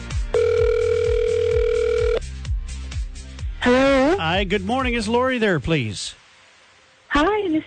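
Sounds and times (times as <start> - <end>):
low rhythmic thumping music bed: 0.0 - 5.2
electronic phone line ringback tone: 0.3 - 2.2
speech: 4.2 - 6.2, 7.2 - 7.6.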